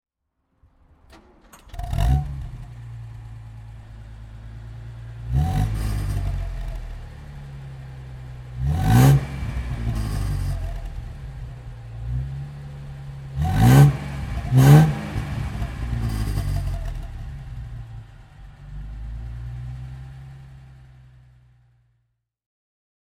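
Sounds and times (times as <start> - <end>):
1956 Jensen 541 car: 0.6 - 22.2.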